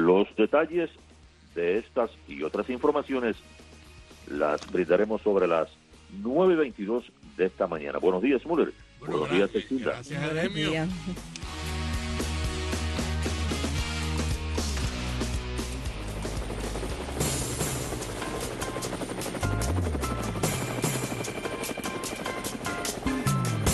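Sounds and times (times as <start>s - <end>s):
speech: 0.0s - 3.6s, 4.3s - 11.7s
helicopter rotor blades thumping and whirring: 13.0s - 23.7s.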